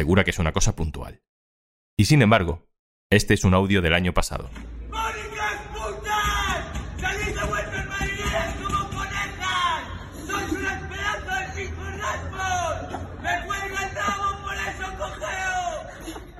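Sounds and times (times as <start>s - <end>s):
speech: 0.0s - 1.2s, 2.0s - 5.2s
crowd shouting insults and chanting from open windows: 4.7s - 16.3s.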